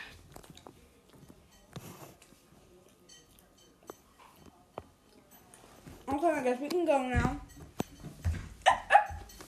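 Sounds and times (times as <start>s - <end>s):
speech: 6.2s - 7.4s
puppy barking: 8.6s - 9.3s.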